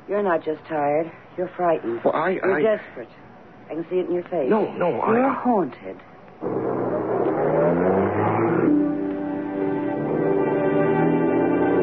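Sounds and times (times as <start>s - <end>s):
speech: 0.1s - 6.6s
car engine accelerating as the car pulls away: 6.4s - 11.8s.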